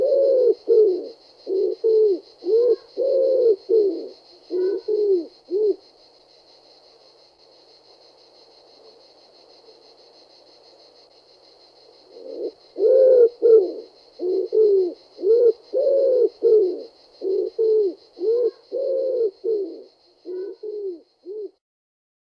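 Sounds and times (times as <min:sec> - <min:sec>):
common wood pigeon cooing: 0:00.0 - 0:05.8, 0:12.1 - 0:21.6.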